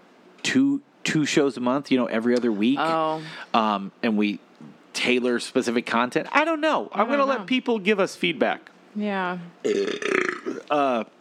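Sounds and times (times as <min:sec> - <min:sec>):
speech: 0:00.5 - 0:11.2
loud burp: 0:09.6 - 0:10.9.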